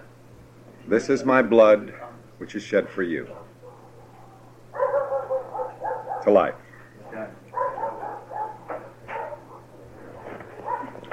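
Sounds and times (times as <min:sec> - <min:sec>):
steady low hum: 0:00.0 - 0:11.1
speech: 0:00.9 - 0:03.5, 0:06.2 - 0:06.6
several dogs barking and yipping outside: 0:03.3 - 0:11.1.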